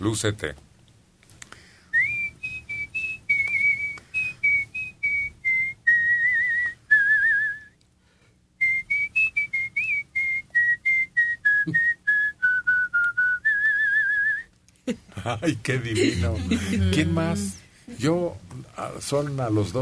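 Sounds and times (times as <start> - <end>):
speech: 0.0 - 0.7, 15.2 - 19.8
person whistling a tune: 1.9 - 7.8, 8.6 - 14.5
laughter: 14.9 - 17.4.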